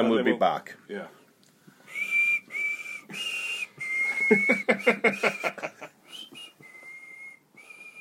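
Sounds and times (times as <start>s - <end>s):
speech: 0.0s - 1.2s, 4.3s - 5.9s
person whistling a national anthem tune: 1.9s - 5.3s, 6.1s - 7.9s
laughter: 4.1s - 6.0s.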